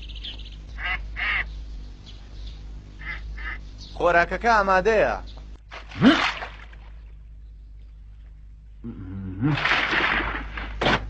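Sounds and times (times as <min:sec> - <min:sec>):
low hum: 0:00.0 - 0:11.0
duck quacking: 0:00.8 - 0:01.5, 0:03.0 - 0:03.6
speech: 0:04.0 - 0:05.3, 0:06.0 - 0:06.3.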